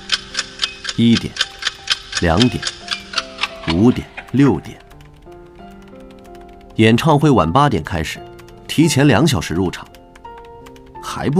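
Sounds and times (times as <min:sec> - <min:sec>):
clock ticking: 0:00.0 - 0:11.3
speech: 0:01.0 - 0:01.4, 0:02.2 - 0:02.8, 0:03.6 - 0:04.8, 0:06.8 - 0:09.9, 0:11.1 - 0:11.3.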